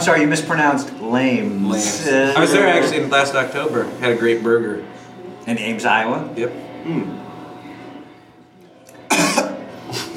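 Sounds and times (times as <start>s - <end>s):
speech: 0.0s - 7.2s
single sharp cough: 9.1s - 9.6s.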